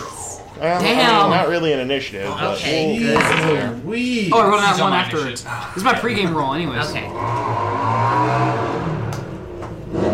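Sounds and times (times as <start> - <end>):
speech: 0.6 - 8.4
car engine revving outside: 6.9 - 10.1.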